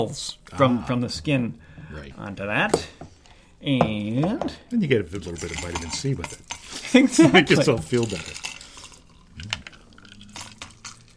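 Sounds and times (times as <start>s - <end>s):
speech: 0.0s - 3.0s, 3.6s - 8.5s
drink being poured into a glass: 7.5s - 11.1s.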